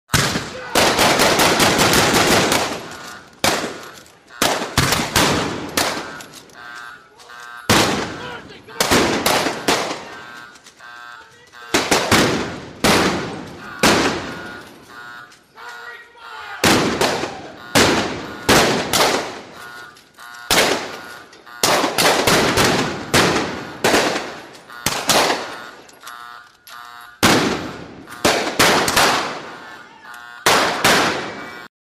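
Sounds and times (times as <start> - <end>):
gunfight gunfire: 0.1 - 6.7, 7.7 - 10.6, 11.6 - 15.0, 16.6 - 19.9, 20.5 - 25.9, 27.2 - 29.8, 30.4 - 31.7.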